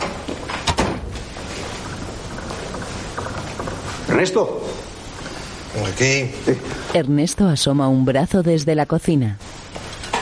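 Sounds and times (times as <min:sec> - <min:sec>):
steady noisy hiss: 0:00.0 - 0:10.1
door shutting thud from stairwell landing: 0:00.6 - 0:01.1
speech: 0:04.2 - 0:04.9, 0:05.8 - 0:09.4.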